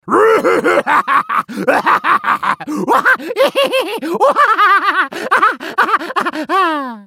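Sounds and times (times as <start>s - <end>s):
hyena laughing: 0.2s - 7.0s.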